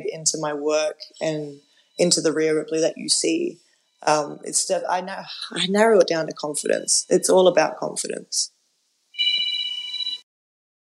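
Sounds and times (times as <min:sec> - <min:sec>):
speech: 0:00.0 - 0:08.6
landline telephone ringing: 0:09.2 - 0:10.2.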